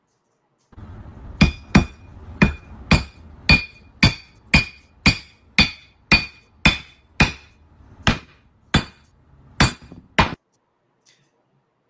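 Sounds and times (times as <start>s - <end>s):
hammer striking a glass Crown Royal whiskey bottle: 1.4s - 7.5s.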